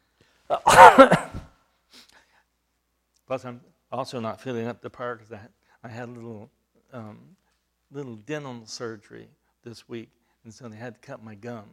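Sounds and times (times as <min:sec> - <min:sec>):
speech: 0:00.5 - 0:01.3, 0:03.3 - 0:11.7
person coughing: 0:00.5 - 0:01.5.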